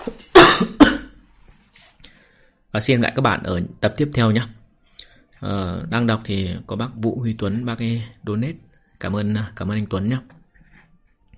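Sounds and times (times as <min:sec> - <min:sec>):
person coughing: 0:00.1 - 0:01.2
speech: 0:02.8 - 0:04.6, 0:05.4 - 0:10.4.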